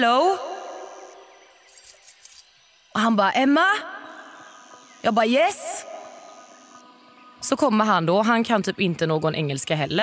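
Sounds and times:
speech: 0:00.0 - 0:00.5, 0:03.0 - 0:04.0, 0:05.0 - 0:05.7, 0:07.4 - 0:10.0
bunch of keys jangling: 0:01.7 - 0:02.5.

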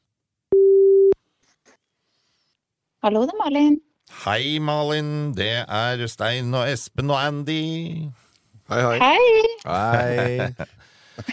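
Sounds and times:
telephone ringing tone beep while placing a call: 0:00.5 - 0:01.2
speech: 0:03.0 - 0:11.3
laughter: 0:09.7 - 0:11.3.

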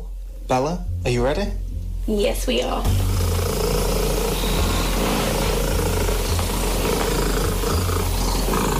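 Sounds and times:
speech: 0:00.5 - 0:03.2
loud domestic cat purring: 0:02.8 - 0:08.7.

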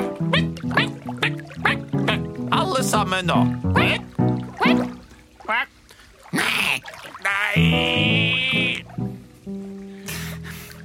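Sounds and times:
people imitating duck quacks with their voices: 0:00.0 - 0:02.4, 0:03.7 - 0:08.9
speech: 0:02.8 - 0:04.0.

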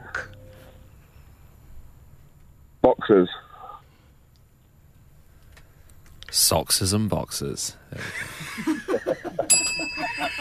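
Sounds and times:
speech: 0:03.0 - 0:03.4, 0:06.5 - 0:08.7
people chuckling: 0:07.9 - 0:10.3
small hand bell ringing: 0:09.4 - 0:10.3.

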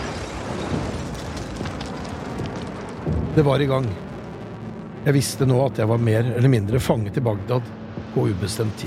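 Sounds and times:
explosions from missile strikes: 0:00.0 - 0:05.8
speech: 0:03.4 - 0:04.1, 0:05.0 - 0:08.8.

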